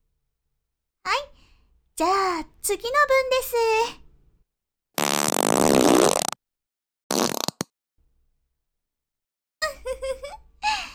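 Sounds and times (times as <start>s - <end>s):
speech: 2.0s - 4.0s
loud rasping fart: 5.0s - 6.4s, 7.1s - 7.7s
person giggling: 9.6s - 10.9s.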